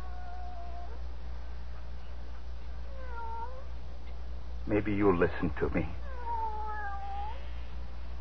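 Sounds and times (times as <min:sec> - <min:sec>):
cat meowing: 0:00.0 - 0:01.0, 0:02.9 - 0:03.7, 0:06.0 - 0:07.5
low steady hum: 0:00.0 - 0:08.1
speech: 0:04.7 - 0:06.0.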